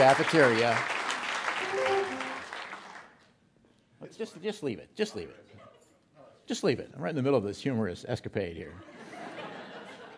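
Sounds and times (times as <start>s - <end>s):
speech: 0.0s - 1.0s, 4.0s - 5.7s, 6.5s - 9.0s
audience applause: 0.0s - 3.2s
laughter: 8.8s - 10.1s.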